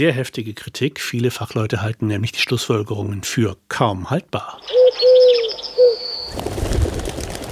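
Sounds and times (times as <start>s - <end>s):
speech: 0.0s - 5.6s
pigeons cooing: 4.5s - 6.4s
noisy rustling, likely wings flapping: 5.6s - 7.5s.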